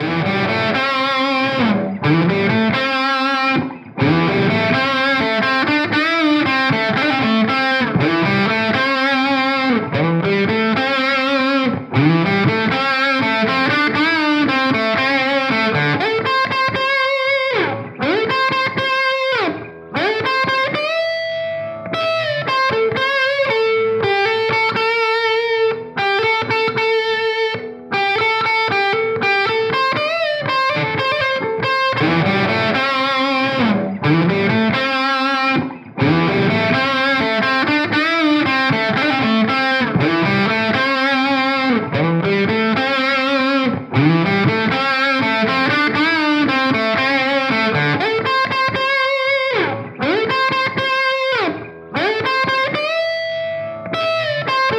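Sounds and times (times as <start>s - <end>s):
electric guitar lead on bridge pickup through Mesa amp: 0.0s - 54.7s.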